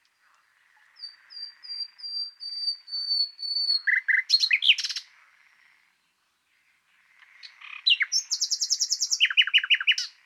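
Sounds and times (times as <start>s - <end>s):
common nightingale Luscinia megarhynchos whistles and chattering notes: 0.8s - 5.1s, 7.4s - 10.2s.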